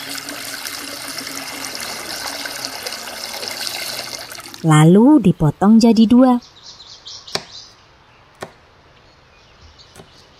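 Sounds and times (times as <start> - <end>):
limes being washed in water: 0.0 - 4.7
speech: 4.6 - 6.6.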